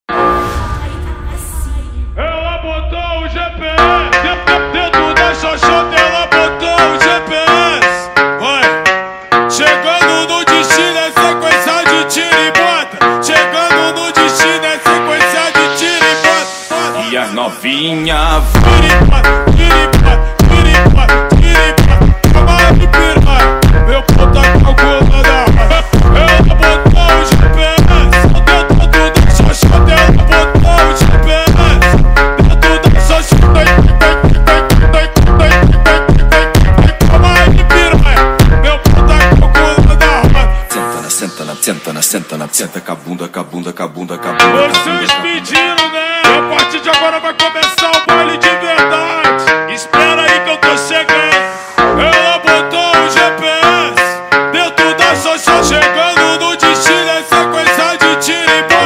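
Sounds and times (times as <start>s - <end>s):
aggressive Brazilian funk phonk music: 0.1s - 58.8s.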